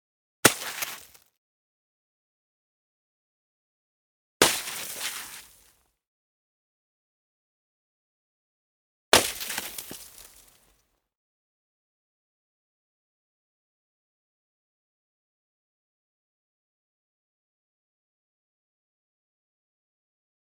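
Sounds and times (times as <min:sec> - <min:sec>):
snowball hitting: 0:00.5 - 0:01.1, 0:04.4 - 0:05.4, 0:09.2 - 0:10.3.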